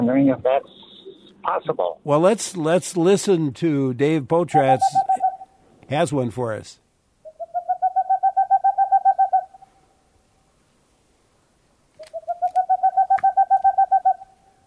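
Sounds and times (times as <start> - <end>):
speech: 0.0 - 5.3, 5.9 - 6.8
boreal owl call: 0.6 - 1.4, 4.4 - 5.6, 7.2 - 9.8, 12.0 - 14.6.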